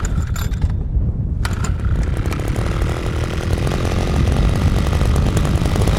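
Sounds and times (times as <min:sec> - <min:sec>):
scraping mechanical rattles: 0:00.0 - 0:05.9
green metal motorized ice auger grinding a hole through ice for ice fishing: 0:01.4 - 0:05.9
small two-stroke engine of a motorized ice auger: 0:01.4 - 0:05.9.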